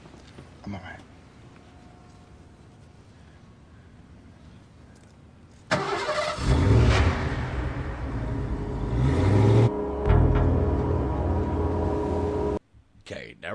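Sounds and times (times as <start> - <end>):
speech: 0.6 - 1.1
car engine starting and driving off: 5.7 - 12.6.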